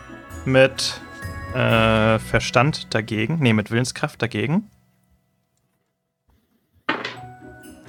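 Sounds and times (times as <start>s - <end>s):
speech: 0.4s - 4.8s
dice tossed onto a hard table: 6.9s - 7.3s.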